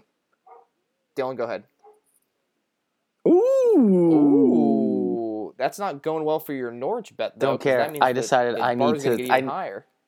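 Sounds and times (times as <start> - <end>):
dog barking: 0.4 - 0.8, 1.8 - 2.1
speech: 1.2 - 1.7, 3.6 - 4.9, 5.6 - 9.9.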